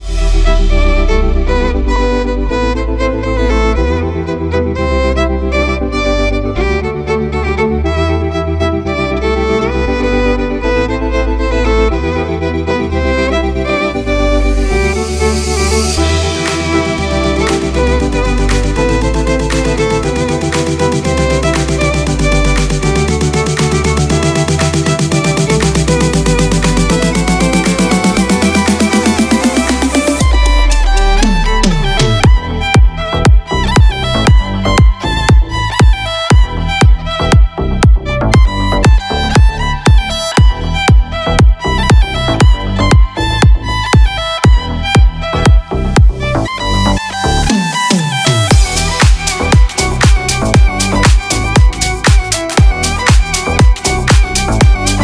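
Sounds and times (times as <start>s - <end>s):
violin remix ringtone: 0.2s - 55.0s.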